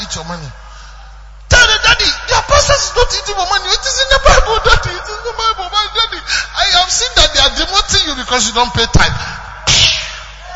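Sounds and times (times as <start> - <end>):
speech: 0.1 - 0.6, 1.8 - 9.4
father slapping child on the face: 9.7 - 10.2.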